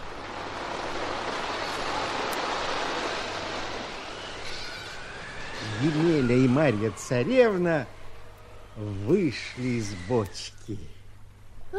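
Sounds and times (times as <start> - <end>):
sea waves washing onto a dry shore of yellow sand: 0.0 - 4.7
wind blowing: 0.0 - 10.8
low hum: 0.0 - 11.7
speech: 5.8 - 8.0, 8.8 - 11.0.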